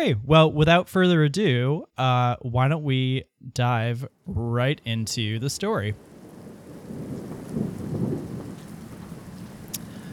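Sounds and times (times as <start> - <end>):
speech: 0.0 - 6.1
steady rain in a thunderstorm: 3.7 - 10.1
low rolling thunder: 5.9 - 10.1.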